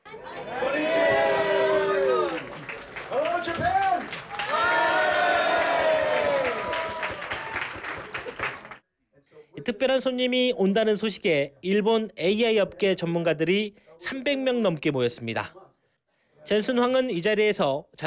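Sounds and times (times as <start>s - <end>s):
excited shouting: 0.2s - 7.7s
large crowd cheering and whooping at event entrance: 0.4s - 8.8s
scattered clapping: 1.7s - 8.8s
speech: 9.8s - 15.6s, 16.4s - 18.0s.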